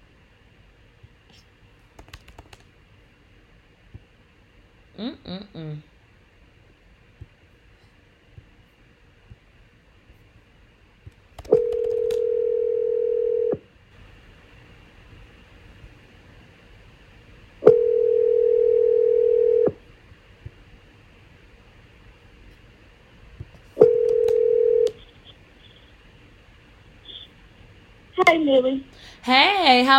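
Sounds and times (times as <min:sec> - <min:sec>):
speech: 0:05.0 - 0:05.9, 0:28.5 - 0:29.9
telephone line tone: 0:11.6 - 0:13.6, 0:17.6 - 0:19.8, 0:23.8 - 0:25.0.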